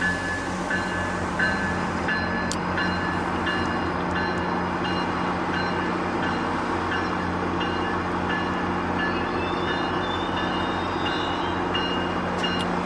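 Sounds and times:
commuter train rumbling at a station: 0:00.0 - 0:12.8
faint high squeals and tones from commuter train: 0:09.2 - 0:12.1.

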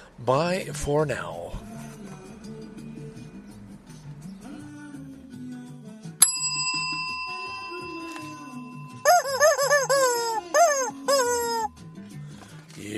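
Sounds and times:
speech: 0:00.2 - 0:01.7
bright bell ringing: 0:06.2 - 0:10.2
chicken-like squawking calls: 0:09.0 - 0:11.7.

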